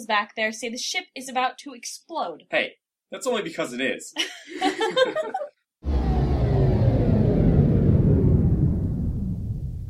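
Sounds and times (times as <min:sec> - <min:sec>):
speech: 0:00.0 - 0:05.4
laughter-like voices: 0:04.2 - 0:05.6
loud deep storm rumble: 0:05.8 - 0:09.8.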